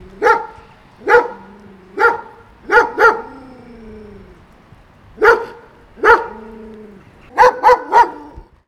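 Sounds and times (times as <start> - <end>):
dog barking: 0.2 - 3.4, 5.2 - 6.5, 7.3 - 8.5.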